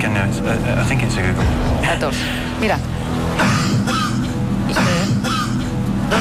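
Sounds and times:
speech: 0.2s - 5.2s
harsh coughs on a TV quiz show set: 3.4s - 6.1s.

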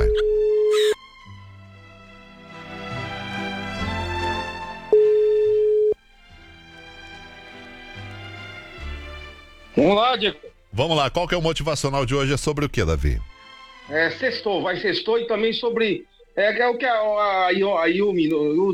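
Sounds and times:
telephone call tone beep: 0.0s - 1.0s, 4.9s - 6.0s
continuous lower sound: 0.0s - 18.7s
speech: 9.8s - 13.3s, 13.9s - 18.7s.

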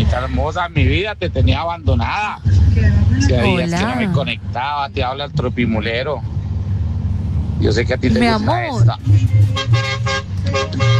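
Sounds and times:
speech: 0.1s - 6.4s, 7.6s - 10.9s
big truck horn honking: 8.5s - 10.9s.

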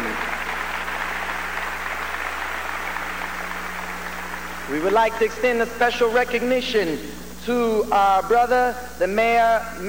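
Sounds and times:
audience applause: 0.0s - 5.1s
speech: 4.7s - 9.8s.

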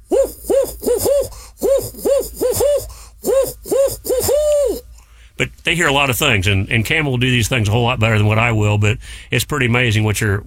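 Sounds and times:
person imitating a barred owl hooting: 0.0s - 5.6s
speech: 5.7s - 10.4s.

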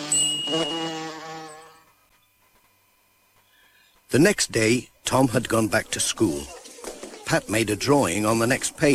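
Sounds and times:
bee buzzing: 0.0s - 2.1s
speech: 4.1s - 6.6s, 7.3s - 8.9s.

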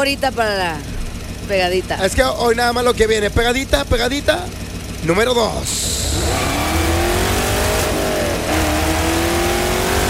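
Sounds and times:
speech: 0.0s - 6.7s
car engine revving: 0.0s - 10.0s.

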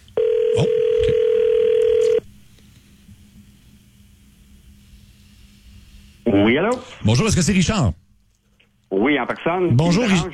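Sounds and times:
telephone line tone for a call: 0.2s - 2.2s
speech: 6.6s - 8.0s, 9.3s - 10.3s.

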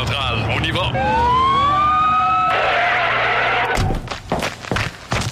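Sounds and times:
rushing roar of traffic noise: 0.0s - 5.2s
police patrol car siren wailing: 0.6s - 3.8s.

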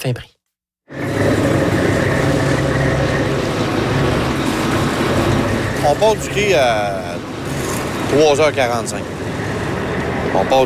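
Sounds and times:
speech: 0.0s - 1.1s, 5.8s - 7.1s, 8.1s - 9.2s, 10.3s - 10.6s
lobster fishing boat engine rumbling: 0.9s - 10.6s.

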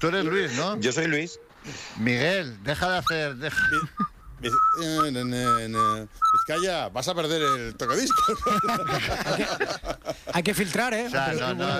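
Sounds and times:
speech: 0.0s - 11.7s
person whistling: 3.0s - 9.1s
laughter: 8.2s - 10.5s.

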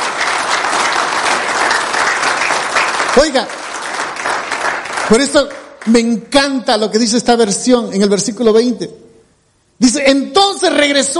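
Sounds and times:
crowd applauding: 0.0s - 6.1s
speech: 3.2s - 3.6s, 5.1s - 9.0s, 9.8s - 11.1s.

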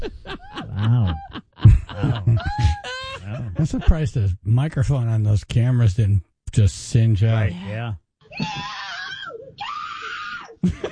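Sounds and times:
laughter: 0.0s - 4.2s, 10.6s - 10.9s
mother's short gasping cry: 2.0s - 3.5s
speech: 3.6s - 8.8s, 10.6s - 10.9s
mother screaming in terror at an armadillo: 8.3s - 10.6s.

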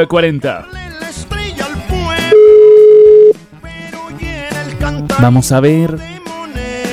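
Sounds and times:
speech: 0.0s - 0.8s, 4.8s - 6.1s
telephone ringing tone while calling a listener: 2.3s - 3.4s.

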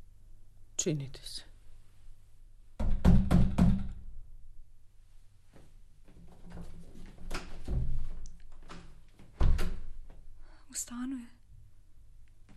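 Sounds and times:
speech: 0.8s - 1.5s, 10.8s - 11.4s
loud knocking on a door: 2.8s - 4.0s.

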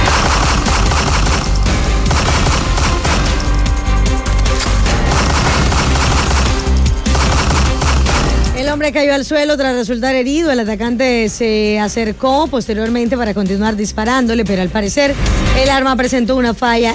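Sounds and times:
rapid sustained burst of gunshots: 0.0s - 3.6s, 4.6s - 8.6s
speech: 8.8s - 16.9s.

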